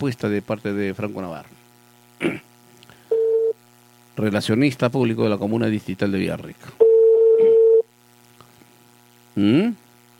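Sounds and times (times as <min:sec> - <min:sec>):
speech: 0:00.0 - 0:01.6, 0:02.2 - 0:02.4, 0:04.2 - 0:06.8, 0:09.4 - 0:09.8
telephone dial tone while placing a call: 0:03.1 - 0:03.6, 0:06.8 - 0:07.9.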